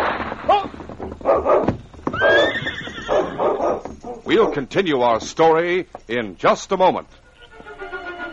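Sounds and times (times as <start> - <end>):
horse hooves clip-clopping at a trot: 0.2 - 6.4
horse whinnying loudly: 2.1 - 4.2
speech: 4.3 - 7.2.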